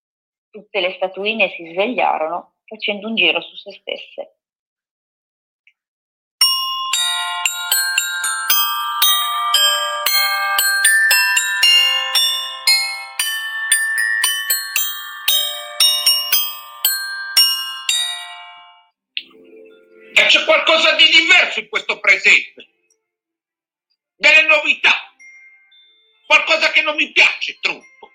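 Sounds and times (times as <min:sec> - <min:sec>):
speech: 0:00.6 - 0:04.4, 0:20.6 - 0:22.8, 0:24.2 - 0:25.1, 0:26.3 - 0:27.9
bells chiming midnight: 0:06.4 - 0:21.0, 0:25.2 - 0:28.1.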